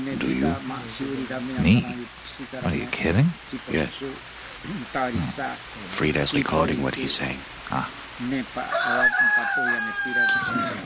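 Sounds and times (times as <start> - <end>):
rain: 0.0 - 10.8
speech: 0.1 - 10.8
low choppy vocal sounds: 4.6 - 5.6
rooster crowing: 8.6 - 10.8.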